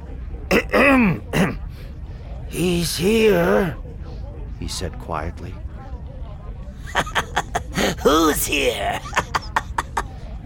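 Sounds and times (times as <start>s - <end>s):
man clearing his throat: 0.5s - 1.6s
speech: 0.7s - 1.5s, 2.5s - 3.8s, 4.6s - 5.6s, 7.8s - 9.2s
laughter: 6.8s - 10.4s.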